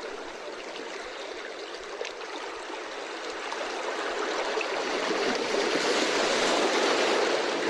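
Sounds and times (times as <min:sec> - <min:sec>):
ocean waves washing ashore: 0:02.4 - 0:07.6.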